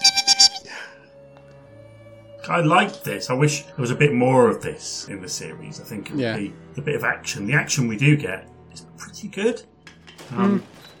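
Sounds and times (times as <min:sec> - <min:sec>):
voice imitating bat squeaks as a Foley sound effect: 0:00.0 - 0:00.7
speech: 0:02.5 - 0:08.6, 0:09.2 - 0:09.7, 0:10.3 - 0:10.7.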